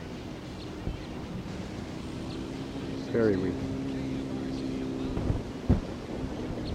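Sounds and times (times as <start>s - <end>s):
wind blowing: 0.0s - 6.7s
speech: 3.1s - 3.8s.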